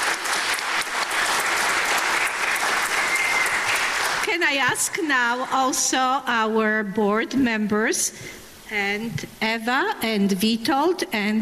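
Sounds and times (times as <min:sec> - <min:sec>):
audience applause: 0:00.0 - 0:05.4
speech: 0:04.4 - 0:11.3.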